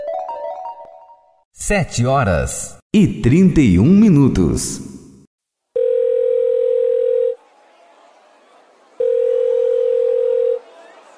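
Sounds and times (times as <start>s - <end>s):
speech: 1.7s - 4.9s
telephone ring tone: 5.8s - 7.4s, 9.0s - 10.7s.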